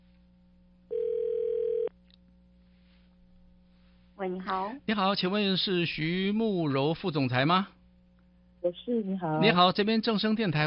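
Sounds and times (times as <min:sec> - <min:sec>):
faint hum: 0:00.0 - 0:10.6
telephone ringback tone: 0:00.9 - 0:01.9
speech: 0:04.2 - 0:07.8, 0:08.6 - 0:10.6.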